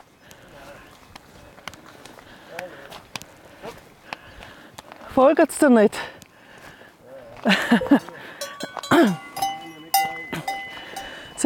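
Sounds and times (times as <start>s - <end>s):
cow hooves clopping and shuffling across hard ground: 0.0s - 5.2s, 6.2s - 11.4s
steady outdoor noise: 0.0s - 11.4s
speech: 5.2s - 6.1s
laughter: 7.4s - 8.4s
farmer calling while herding cows: 8.4s - 11.4s.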